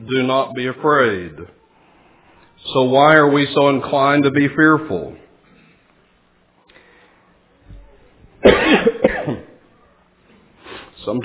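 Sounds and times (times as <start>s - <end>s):
speech: 0.1s - 1.6s, 2.6s - 5.2s, 11.1s - 11.2s
person coughing during a sermon: 8.4s - 9.6s.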